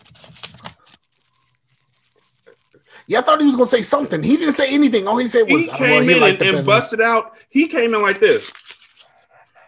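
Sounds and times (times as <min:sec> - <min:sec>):
sheet of paper being crumpled: 0:00.0 - 0:02.8, 0:08.1 - 0:09.5
speech: 0:03.1 - 0:08.6.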